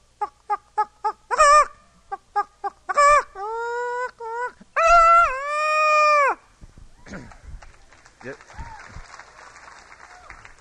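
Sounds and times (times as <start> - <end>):
man vocally imitating chicken clucks and squawking cackles: 0.0 - 6.4
scattered audience applause: 7.6 - 10.5.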